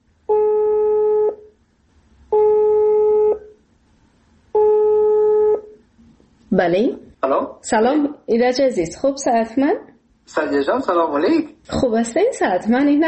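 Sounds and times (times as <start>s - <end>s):
faint low hum: 0.0s - 13.0s
telephone ringing tone on an outgoing call: 0.3s - 1.5s, 2.3s - 3.6s, 4.6s - 5.8s
speech: 6.6s - 13.0s.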